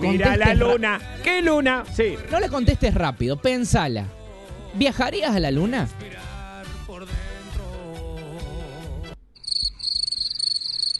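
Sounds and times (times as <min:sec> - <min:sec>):
speech: 0:00.0 - 0:06.2
music: 0:00.0 - 0:09.2
crickets chirping: 0:09.4 - 0:10.9.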